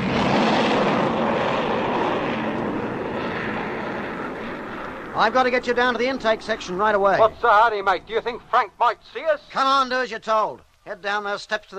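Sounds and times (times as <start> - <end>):
fighter plane flying overhead: 0.0 - 8.5
speech: 5.2 - 11.7.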